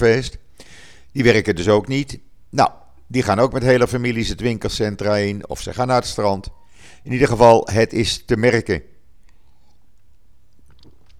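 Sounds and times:
speech: 0.0 - 0.4, 1.2 - 8.9
person sipping water: 9.2 - 11.1.

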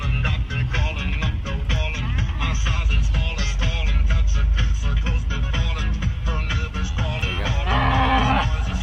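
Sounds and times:
loud continuous music with a steady beat: 0.0 - 8.8
cow mooing: 7.3 - 8.8.

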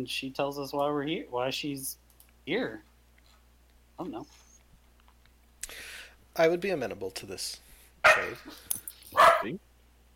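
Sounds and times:
speech: 0.0 - 2.9, 4.0 - 4.4, 5.7 - 9.7
person imitating a dog barking with a falling whine: 8.1 - 8.5, 9.2 - 9.6.

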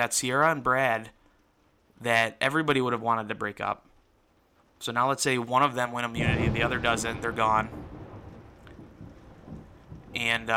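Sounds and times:
speech: 0.0 - 1.2, 2.0 - 3.9, 4.8 - 7.8, 10.2 - 10.5
low rolling thunder: 6.2 - 10.5
steady hiss of heavy rain: 6.2 - 10.5.

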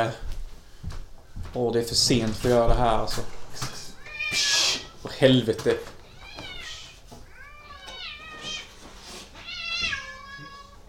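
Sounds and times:
speech: 0.0 - 0.3, 1.5 - 6.0
several cats meowing outside: 3.7 - 5.2, 5.8 - 10.8.

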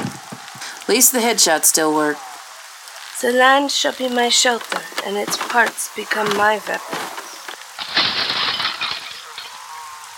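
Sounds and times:
speech: 0.9 - 2.3, 3.2 - 7.1
window glass shattering: 4.3 - 10.0
glass shards tinkling: 7.8 - 9.7.

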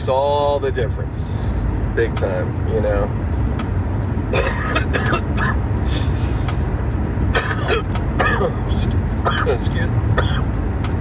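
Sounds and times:
speech: 0.0 - 3.4, 7.7 - 10.6
steady low rumble: 0.0 - 11.0
harsh coughs and throat-clearing bursts: 4.3 - 5.7, 7.3 - 10.5.

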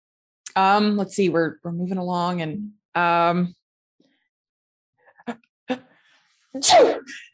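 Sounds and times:
speech: 0.6 - 3.6, 5.3 - 5.9, 6.6 - 7.3
person sneezing: 6.6 - 7.2.

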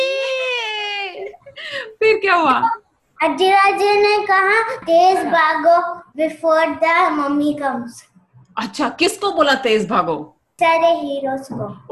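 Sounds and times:
voice imitating a crying baby: 0.0 - 1.8
speech: 2.2 - 11.9.

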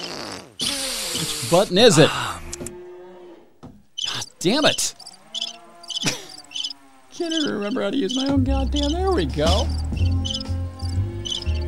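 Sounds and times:
speech: 1.2 - 2.3, 4.4 - 5.0, 7.2 - 10.2
cricket chirping in quick trilling bursts: 4.0 - 11.6.

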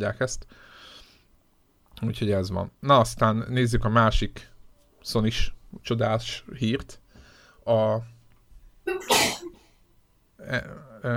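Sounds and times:
speech: 0.0 - 0.8, 2.0 - 7.0, 7.7 - 8.1, 8.8 - 9.4, 10.4 - 11.1
loud sneeze with sharp inhaled build-up: 9.0 - 9.6.

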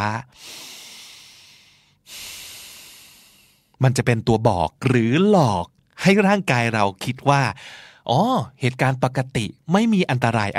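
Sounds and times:
speech: 0.0 - 0.6, 3.8 - 10.5
deep slow breath: 0.4 - 3.8, 7.6 - 8.0.

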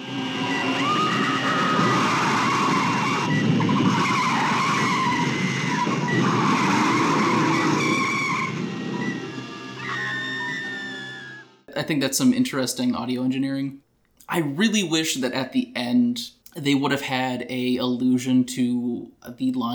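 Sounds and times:
car brakes screeching with a high-pitched squeal: 0.0 - 11.7
speech: 11.8 - 19.7.

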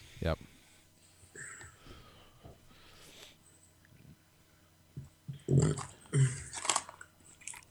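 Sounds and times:
speech: 0.2 - 0.6
person chewing a jelly bean: 5.5 - 7.6.

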